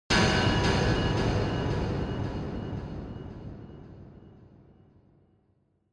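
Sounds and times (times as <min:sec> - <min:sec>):
impact with delay effect: 0:00.1 - 0:04.7.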